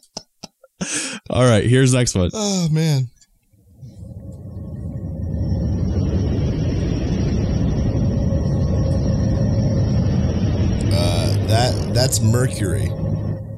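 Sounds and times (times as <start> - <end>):
speech: 0.9 - 3.2, 12.0 - 13.2
space recording of planet Neptune low steady roar: 3.6 - 13.5.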